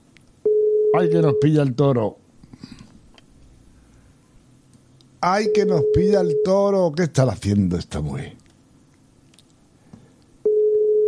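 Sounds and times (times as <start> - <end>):
low hiss: 0.0 - 11.0
telephone tone signalling the called person is unavailable: 0.4 - 1.5, 5.4 - 6.7, 10.4 - 11.0
speech: 0.9 - 2.8, 5.2 - 8.4.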